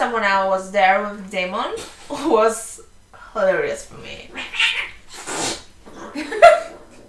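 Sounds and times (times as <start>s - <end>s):
speech: 0.1s - 2.8s, 3.4s - 4.8s
cats hissing sharply: 4.0s - 7.0s
cat giving a short strained yowl: 4.3s - 5.0s.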